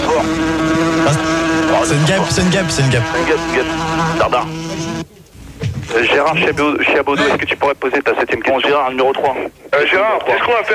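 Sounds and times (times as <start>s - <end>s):
fly buzzing: 0.0s - 5.1s
speech: 0.2s - 10.7s.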